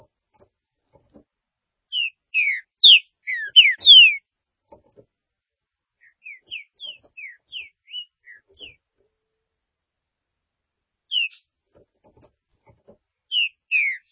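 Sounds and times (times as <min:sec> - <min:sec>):
Green-winged saltator song of slurred whistled notes: 0:01.9 - 0:04.3, 0:06.0 - 0:08.8, 0:11.1 - 0:11.5, 0:13.3 - 0:14.1.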